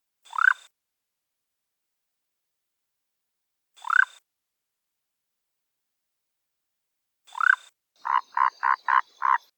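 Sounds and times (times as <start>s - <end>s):
emerald tree frog calling: 7.3s - 9.5s.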